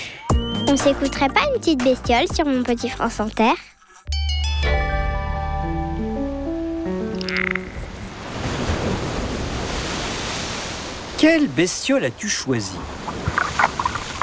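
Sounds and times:
speech: 0.7 - 3.7, 11.2 - 13.0
musical jingle of sustained tones: 4.1 - 7.8
Mediterranean Sea waves breaking at the base of a cliff: 8.1 - 14.2.

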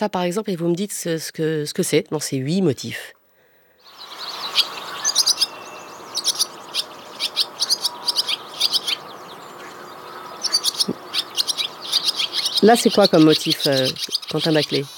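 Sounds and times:
speech: 0.0 - 3.2, 12.6 - 14.9
barn swallow singing high chirps and twittering notes: 3.8 - 14.9.

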